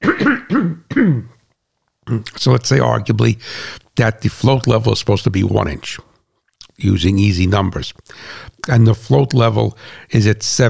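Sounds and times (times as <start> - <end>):
person clearing throat: 0.0 - 1.4, 2.1 - 2.5
speech: 2.1 - 6.1, 6.8 - 10.6.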